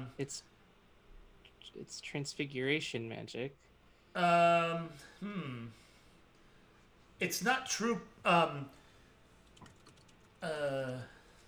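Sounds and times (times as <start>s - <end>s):
speech: 0.1s - 0.5s, 1.6s - 5.8s, 7.2s - 8.8s, 10.4s - 11.2s
several people typing on computer keyboards during a call: 9.4s - 10.4s.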